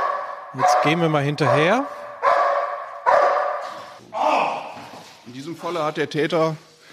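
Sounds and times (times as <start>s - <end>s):
police service dog barking at a suspect in a hall: 0.0s - 3.9s
speech: 0.5s - 2.1s, 5.3s - 6.7s.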